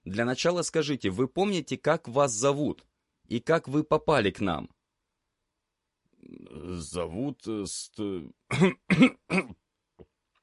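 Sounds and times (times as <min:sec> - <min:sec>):
speech: 0:00.1 - 0:04.8, 0:06.2 - 0:09.6
man clearing his throat: 0:08.5 - 0:09.6.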